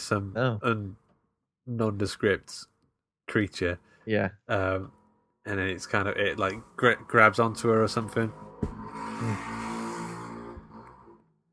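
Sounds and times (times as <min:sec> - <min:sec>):
speech: 0:00.0 - 0:01.0, 0:01.6 - 0:02.7, 0:03.3 - 0:09.6
small moped engine buzzing past: 0:06.4 - 0:11.3.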